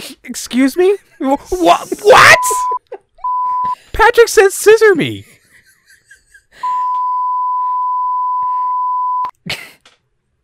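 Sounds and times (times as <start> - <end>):
speech: 0.1 - 2.8, 4.0 - 5.3
laughter: 5.1 - 6.7
censor bleep covering a name: 6.6 - 9.3.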